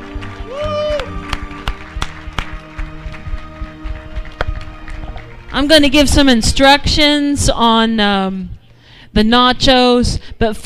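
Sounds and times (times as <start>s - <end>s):
crowd cheering: 0.0s - 5.5s
audience applauding: 0.0s - 6.0s
speech: 5.6s - 8.6s, 9.2s - 10.6s.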